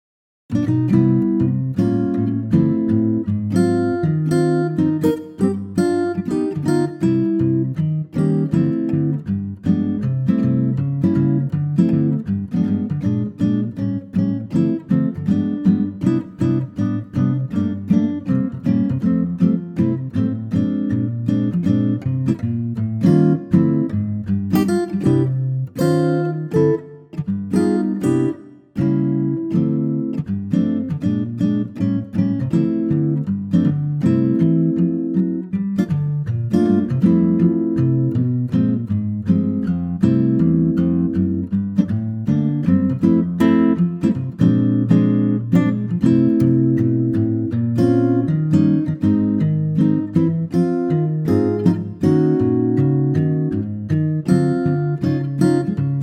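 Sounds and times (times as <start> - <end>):
acoustic guitar in C: 0.5 - 56.0.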